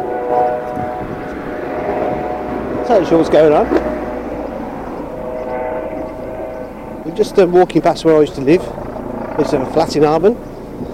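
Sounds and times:
police helicopter flying overhead in Harborne, Birmingham: 0.0s - 10.9s
speech: 2.9s - 3.9s, 7.1s - 8.8s, 9.4s - 10.5s.

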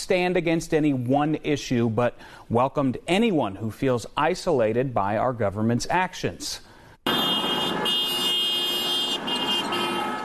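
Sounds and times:
speech: 0.1s - 7.2s
street traffic: 6.5s - 10.2s
car horns of passing cars honking at a demonstration: 7.1s - 10.2s.

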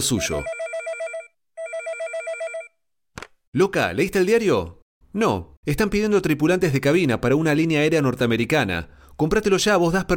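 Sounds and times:
speech: 0.0s - 0.6s, 3.6s - 10.1s
telephone ringing: 0.0s - 2.8s.

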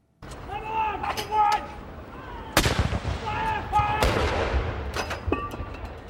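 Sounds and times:
steady murmur: 0.2s - 4.7s
heavy military cannons firing a ceremonial salute for a royal baby's birth: 2.6s - 5.3s.

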